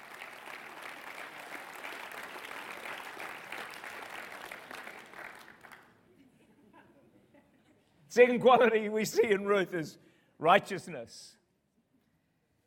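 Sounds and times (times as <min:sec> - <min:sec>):
room full of people applauding: 0:00.0 - 0:06.0
speech: 0:08.2 - 0:11.4.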